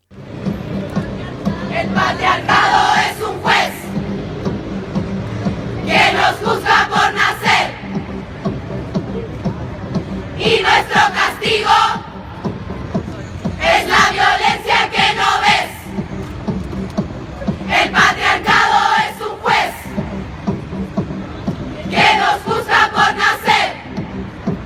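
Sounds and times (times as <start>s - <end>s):
crowd noise: 0.0s - 24.6s
flash mob crowd chanting a protest chant in unison: 1.2s - 4.2s, 5.0s - 8.2s, 10.3s - 12.5s, 13.5s - 16.1s, 17.5s - 20.2s, 21.6s - 24.6s
speech: 1.8s - 2.8s.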